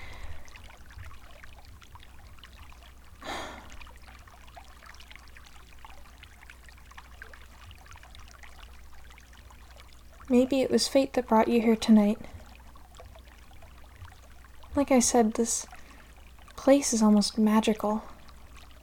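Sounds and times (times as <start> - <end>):
hot water trickling: 0.0 - 18.8
speech: 10.3 - 12.4, 14.8 - 15.8, 16.6 - 18.1.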